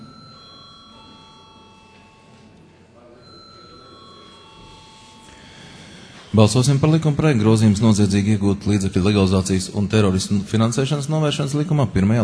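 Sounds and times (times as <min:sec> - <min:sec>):
parliament chamber electric bell ringing before a vote in the Latvian Saeima: 0:00.0 - 0:07.9
low murmur of many people in the Latvian Saeima chamber: 0:00.0 - 0:12.2
speech: 0:06.3 - 0:12.2.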